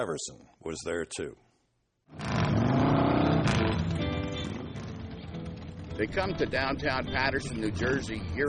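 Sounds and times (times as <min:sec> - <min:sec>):
speech: 0:00.0 - 0:01.5, 0:02.1 - 0:02.4, 0:06.0 - 0:08.4
motorcycle engines revving: 0:02.1 - 0:08.4.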